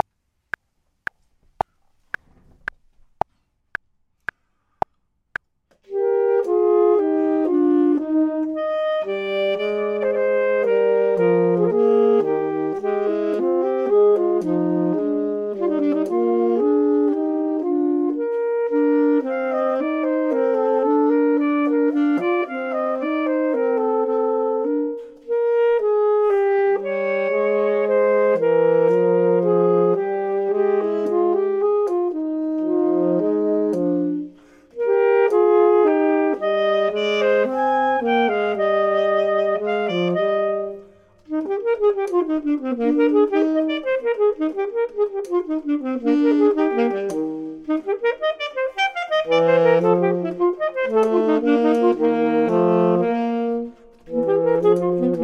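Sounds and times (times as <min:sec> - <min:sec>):
clarinet: 0:05.8 - 0:55.2
saxophone: 0:05.8 - 0:55.2.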